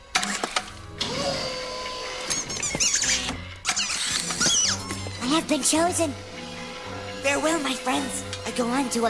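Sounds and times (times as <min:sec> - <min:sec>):
steady mechanical whirring hum of an arcade claw game: 0:00.0 - 0:09.0
little green alien rubber squeak toys squeaking in an arcade claw game: 0:02.2 - 0:05.4
speech: 0:05.4 - 0:06.3, 0:07.2 - 0:09.0.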